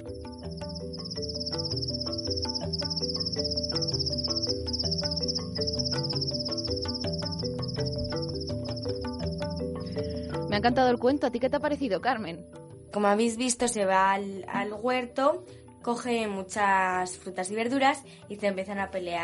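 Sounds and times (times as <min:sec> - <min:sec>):
cicada singing in a high-pitched buzzing trill: 0:00.0 - 0:10.5
soft music: 0:00.0 - 0:19.2
speech: 0:10.6 - 0:19.2.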